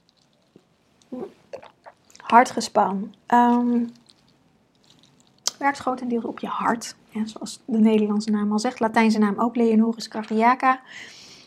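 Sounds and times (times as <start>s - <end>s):
speech: 1.1s - 1.5s, 2.3s - 4.0s, 5.6s - 11.2s
person sipping and swallowing water: 1.1s - 2.6s.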